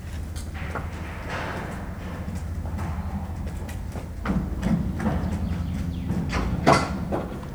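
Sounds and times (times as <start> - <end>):
zebra arriving at evening lodging: 0.1 - 7.5.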